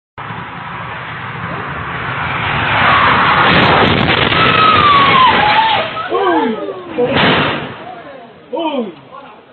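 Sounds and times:
car crash: 0.2 - 6.2, 6.9 - 8.0.

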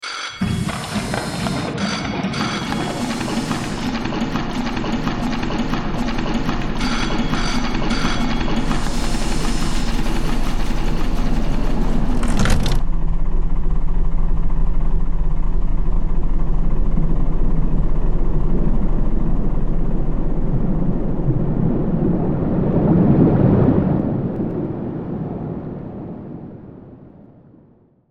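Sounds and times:
submarine: 0.4 - 28.0.

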